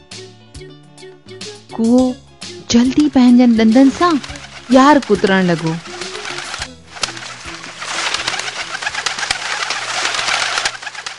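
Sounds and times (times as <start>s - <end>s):
speech: 1.8s - 5.9s
pigeons cooing: 3.8s - 11.1s.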